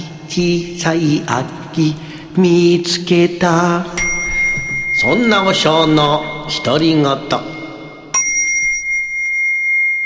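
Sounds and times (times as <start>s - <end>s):
speech: 0.4s - 4.0s, 5.0s - 7.5s
Buddhist temple bell struck and ringing: 4.0s - 10.0s.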